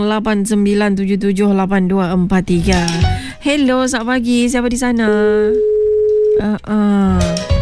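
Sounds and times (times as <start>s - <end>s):
speech: 0.0s - 5.7s, 6.4s - 7.5s
telephone tone as a radio call-in line drops: 5.3s - 6.5s.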